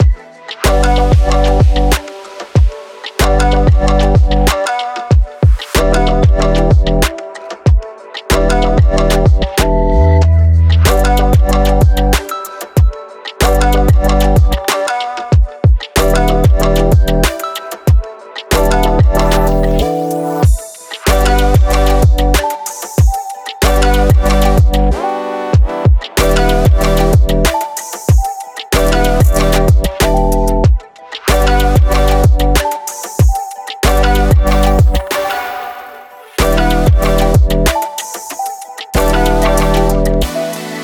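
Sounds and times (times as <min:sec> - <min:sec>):
summer jam music loop: 0:00.0 - 0:40.8.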